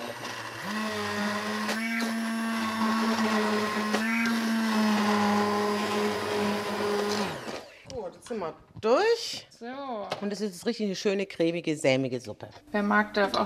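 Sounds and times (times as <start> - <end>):
immersion blender pureeing cooked sugar snap pea soup: 0.0 - 7.7
speech: 8.5 - 13.4.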